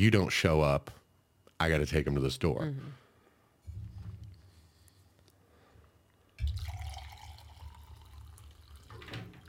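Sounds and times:
speech: 0.0s - 1.0s, 1.6s - 3.0s
liquid pouring into a cup: 6.4s - 9.4s.

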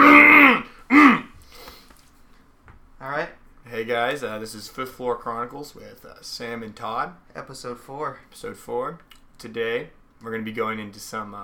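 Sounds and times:
woman clearing her throat: 0.0s - 1.4s
speech: 3.9s - 11.4s.

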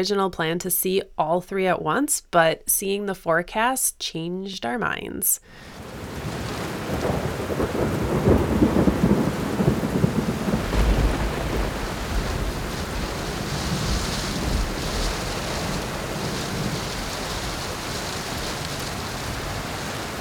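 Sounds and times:
speech: 0.0s - 6.0s
steady rain hissing in a thunderstorm over South Dakota: 5.5s - 20.2s
low rolling rumbles of thunder over South Dakota: 5.8s - 20.2s.

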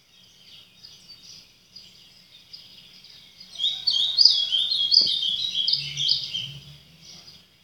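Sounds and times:
birds chirping: 2.5s - 6.7s.

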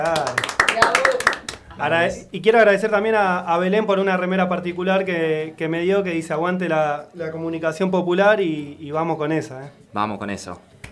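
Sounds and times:
small group clapping: 0.0s - 2.2s
speech: 1.8s - 10.7s.

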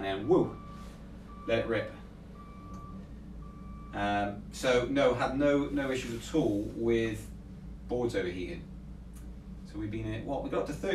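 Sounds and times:
speech: 0.0s - 0.6s, 1.5s - 2.0s, 3.9s - 7.3s, 7.9s - 8.7s, 9.7s - 10.9s
truck reversing beeper: 0.0s - 6.3s.

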